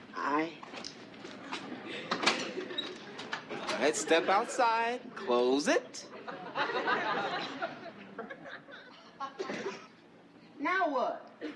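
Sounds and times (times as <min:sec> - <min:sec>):
laughter: 0:01.4 - 0:05.0, 0:05.8 - 0:09.9
door opening with clicks and creak of latch and hinge: 0:01.5 - 0:03.9
speech: 0:03.8 - 0:06.1, 0:06.7 - 0:07.7, 0:10.6 - 0:11.2.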